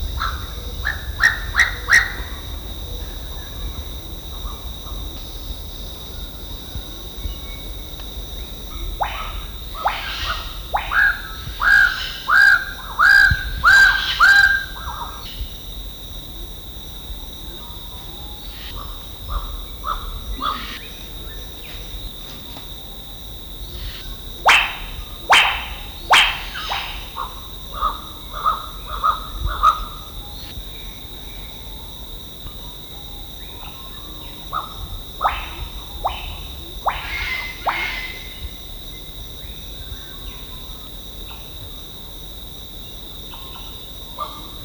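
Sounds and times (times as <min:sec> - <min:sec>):
Paradisaea decora bird of paradise calling: 0:00.2 - 0:15.5, 0:17.6 - 0:22.6, 0:23.6 - 0:31.6, 0:33.4 - 0:38.5.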